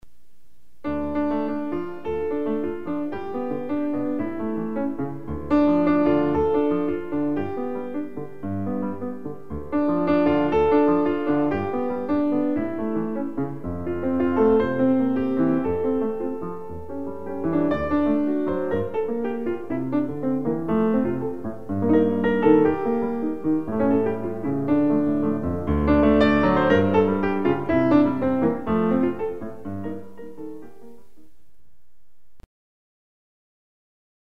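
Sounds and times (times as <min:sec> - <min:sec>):
piano playing: 0:00.8 - 0:31.6.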